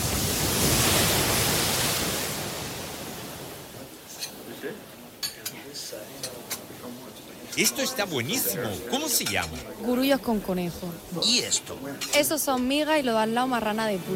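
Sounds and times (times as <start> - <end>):
sea waves breaking against the coast: 0.0 - 14.1
cutlery and dishes clinking: 4.1 - 4.4, 5.2 - 6.7, 7.4 - 9.8, 11.2 - 12.8
speech: 4.6 - 4.9, 7.6 - 14.1.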